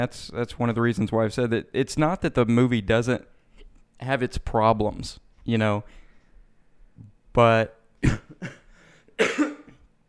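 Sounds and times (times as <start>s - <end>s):
speech: 0.0s - 3.4s, 4.0s - 6.0s, 7.4s - 8.6s
person coughing: 8.0s - 9.9s.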